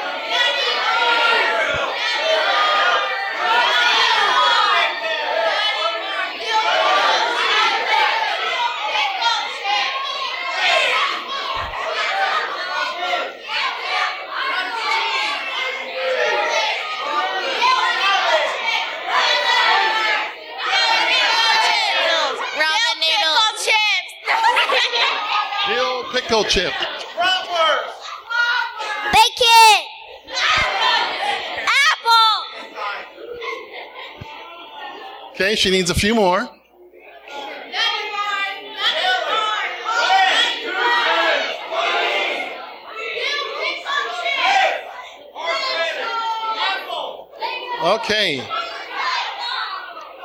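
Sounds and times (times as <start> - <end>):
crowd of many voices including children shouting out grocery store items: 0.0 - 35.4, 37.0 - 50.2
chatter: 0.0 - 50.2
scattered laughter: 33.3 - 34.3
speech: 35.5 - 36.6, 47.9 - 48.6.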